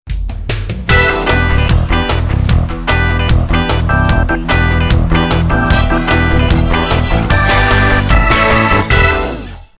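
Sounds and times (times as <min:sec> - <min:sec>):
pop soul music: 0:00.9 - 0:09.4.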